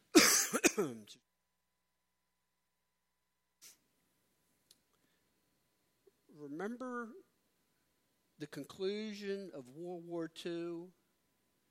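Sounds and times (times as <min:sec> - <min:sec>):
person coughing and clearing throat: 0:00.0 - 0:01.1
speech: 0:00.8 - 0:01.2, 0:06.6 - 0:07.2, 0:08.4 - 0:11.0.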